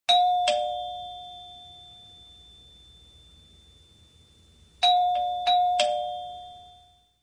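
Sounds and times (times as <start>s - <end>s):
door chimes: 0.1s - 2.1s, 4.8s - 7.0s.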